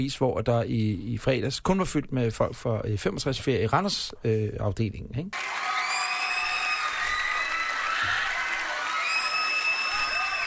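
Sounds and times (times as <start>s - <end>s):
speech: 0.0s - 5.8s
recorded stadium crowd roar played over a broadcast: 5.4s - 10.4s.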